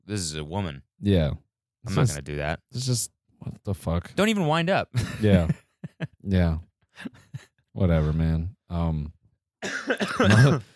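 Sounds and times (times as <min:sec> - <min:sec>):
speech: 0:00.1 - 0:10.7
person coughing with a rough throaty burst: 0:09.6 - 0:10.7.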